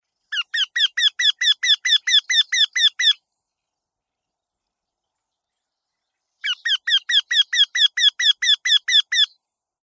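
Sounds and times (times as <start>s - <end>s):
Eurasian wryneck calling: 0.4s - 3.2s, 6.4s - 9.3s.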